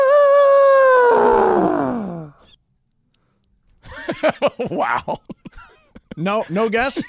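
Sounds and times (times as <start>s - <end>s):
person imitating an elephant trumpeting call: 0.0s - 2.4s
speech: 4.2s - 5.4s, 6.2s - 7.0s.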